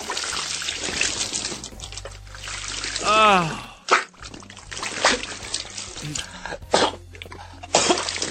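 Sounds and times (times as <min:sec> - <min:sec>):
wet liquid gurgling: 0:00.0 - 0:08.2
man gasping for air: 0:03.0 - 0:04.0, 0:06.0 - 0:06.7
girl vomiting into a man's mouth: 0:03.0 - 0:04.1, 0:06.0 - 0:06.9
man coughing: 0:06.0 - 0:06.6.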